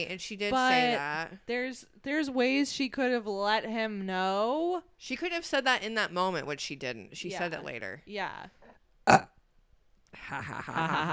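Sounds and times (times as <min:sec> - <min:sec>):
speech: 0:00.0 - 0:09.3, 0:10.1 - 0:11.1
loud burp into the microphone: 0:09.1 - 0:09.4.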